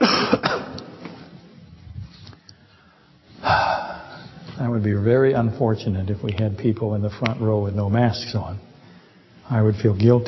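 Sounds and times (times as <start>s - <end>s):
person coughing: 0.0s - 0.8s
speech: 4.6s - 8.7s, 9.5s - 10.2s.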